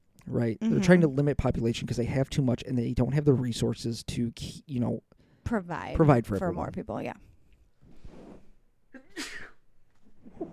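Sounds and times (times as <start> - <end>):
speech: 0.3 - 7.3
sneeze: 9.0 - 9.6.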